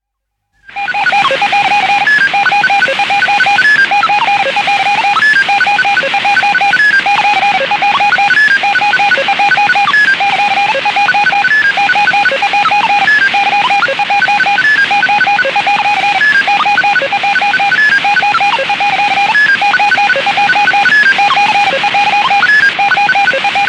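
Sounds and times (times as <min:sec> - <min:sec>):
electronic telemetry effects from a satellite: 0:00.7 - 0:23.6.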